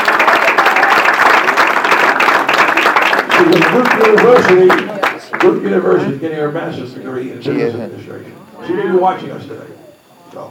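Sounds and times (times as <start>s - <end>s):
audience applause: 0.0s - 5.8s
speech: 3.4s - 10.5s.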